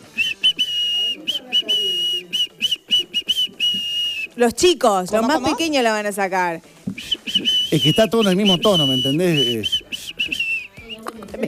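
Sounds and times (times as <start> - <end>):
person whistling a tune: 0.1 - 4.4, 6.9 - 11.1
speech: 4.4 - 6.7, 7.7 - 9.8.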